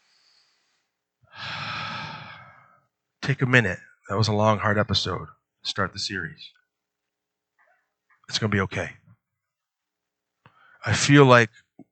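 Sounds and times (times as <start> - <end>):
person taking a breath: 0.0 - 2.8
speech: 3.3 - 6.6, 8.3 - 9.0, 10.8 - 11.6.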